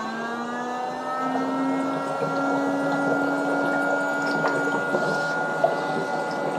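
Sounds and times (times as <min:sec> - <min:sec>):
foot spa bath motor humming in its second mode: 0:00.0 - 0:06.5
water bubbling and churning in a foot spa bath: 0:01.2 - 0:06.5.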